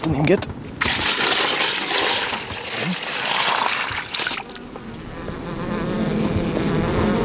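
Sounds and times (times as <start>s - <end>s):
faint wet splashing: 0.8s - 4.7s
many honeybees buzzing in an open hive: 1.2s - 7.2s.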